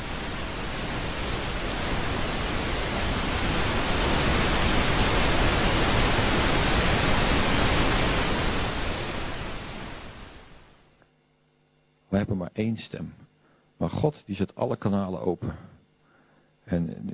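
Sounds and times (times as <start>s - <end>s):
rushing wind gust: 0.0s - 10.6s
speech: 12.2s - 15.8s, 16.7s - 17.1s.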